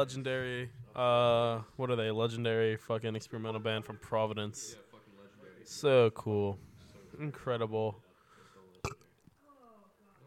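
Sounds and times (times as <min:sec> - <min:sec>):
speech: 0:00.0 - 0:04.8, 0:05.6 - 0:08.0
faint low croaky burp: 0:08.8 - 0:09.2.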